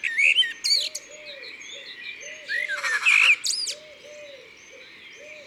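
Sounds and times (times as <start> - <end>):
chattering magpie in the Drome: 0.1 - 1.0, 3.1 - 3.8.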